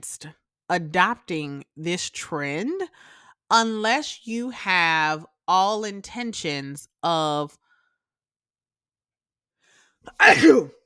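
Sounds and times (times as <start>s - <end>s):
speech: 0.0s - 7.6s, 10.0s - 10.8s
person sneezing: 10.1s - 10.8s.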